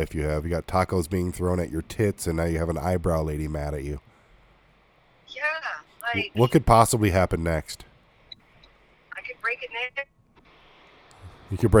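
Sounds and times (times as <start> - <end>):
speech: 0.0 - 4.1, 6.1 - 7.9, 9.5 - 10.2, 11.5 - 11.7
tinny narrow-band voice through a breaking-up phone line: 6.1 - 6.8.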